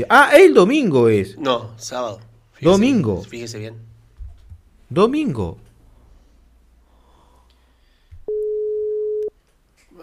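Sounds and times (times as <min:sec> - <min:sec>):
speech: 0:00.0 - 0:03.9, 0:04.9 - 0:05.6
telephone ringing tone of an outgoing call: 0:08.3 - 0:09.3.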